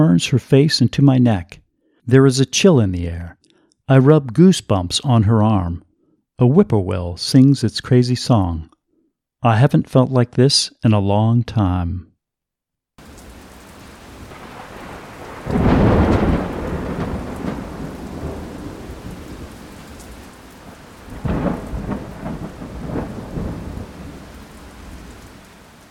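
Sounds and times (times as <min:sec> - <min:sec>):
speech: 0:00.0 - 0:08.7, 0:09.4 - 0:12.1
deep rolling thunderclaps: 0:13.0 - 0:25.8
hard rain pounding a tin roof: 0:13.0 - 0:25.8.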